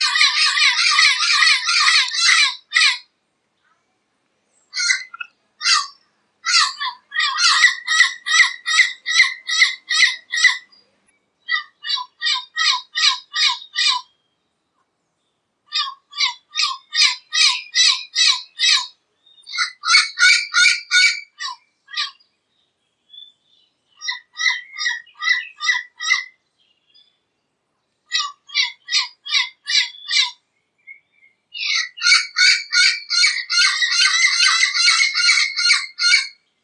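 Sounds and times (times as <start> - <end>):
turquoise-fronted amazon parrot calling: 0.0 - 3.0, 4.7 - 10.8, 11.4 - 14.1, 15.7 - 22.2, 24.0 - 26.4, 28.1 - 30.4, 31.6 - 36.4.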